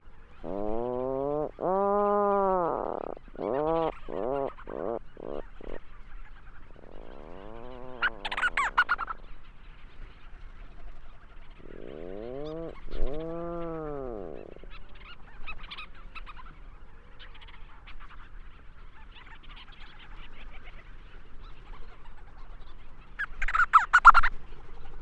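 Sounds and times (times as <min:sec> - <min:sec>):
Leach's storm-petrel calling: 0:00.3 - 0:09.4, 0:11.5 - 0:16.6, 0:21.6 - 0:24.3.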